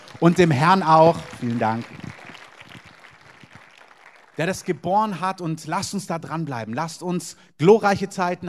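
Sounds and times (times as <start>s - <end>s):
audience applause: 0.0s - 4.7s
speech: 0.2s - 2.0s, 4.4s - 8.4s.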